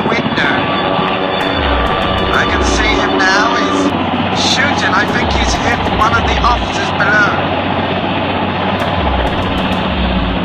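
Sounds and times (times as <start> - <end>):
helicopter flying overhead: 0.0 - 10.4.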